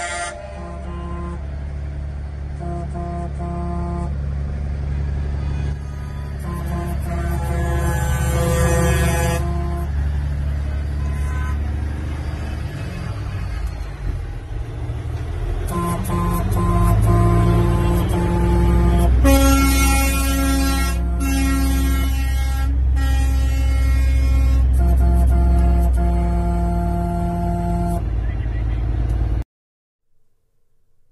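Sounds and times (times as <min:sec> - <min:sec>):
loud truck air horns blaring: 0:00.0 - 0:04.4, 0:05.2 - 0:13.8, 0:15.3 - 0:28.2
low engine rumble: 0:00.0 - 0:29.4.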